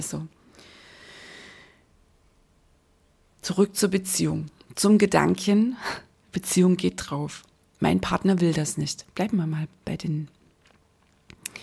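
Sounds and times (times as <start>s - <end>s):
speech: 0.0s - 0.4s, 3.5s - 10.4s
deep breath drawn in and let out slowly: 0.4s - 1.9s.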